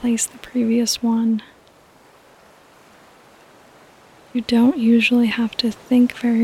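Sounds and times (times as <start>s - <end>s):
speech: 0.0s - 1.5s, 4.4s - 6.4s
ocean surf washing on beach: 0.0s - 6.4s.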